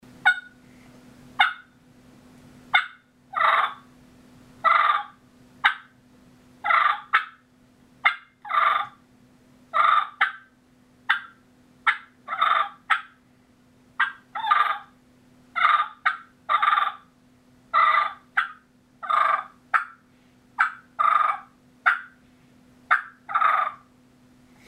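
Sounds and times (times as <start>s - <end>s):
turkey clucking and purring: 0.2s - 0.6s, 1.4s - 1.8s, 2.7s - 4.0s, 4.6s - 6.0s, 6.6s - 9.0s, 9.7s - 13.2s, 13.9s - 22.2s, 22.8s - 24.0s.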